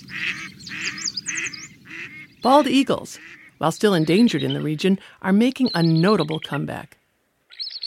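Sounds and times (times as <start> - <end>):
flock of canvasback ducks calling: 0.0 - 4.7
birds chirping: 0.0 - 7.8
speech: 2.4 - 7.0.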